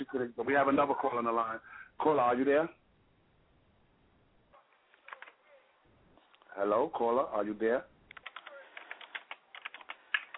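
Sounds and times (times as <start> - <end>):
speech: 0.2 - 2.8, 6.6 - 7.9
typing on a computer keyboard: 5.1 - 5.4, 8.1 - 10.3.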